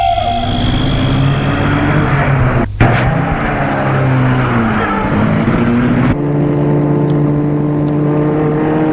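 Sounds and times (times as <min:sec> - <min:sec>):
car engine starting, revving and accelerating away: 0:00.2 - 0:08.9.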